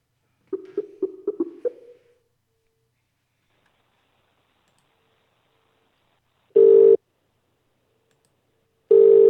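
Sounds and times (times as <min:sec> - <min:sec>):
phone dialing beeps: 0:06.6 - 0:07.0, 0:08.9 - 0:09.2.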